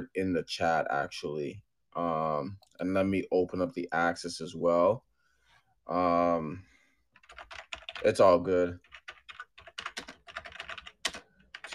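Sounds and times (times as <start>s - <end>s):
speech: 0.0s - 5.1s, 5.9s - 6.7s, 7.3s - 8.9s
rapid clattering computer keyboard typing: 7.2s - 8.2s, 8.8s - 11.7s.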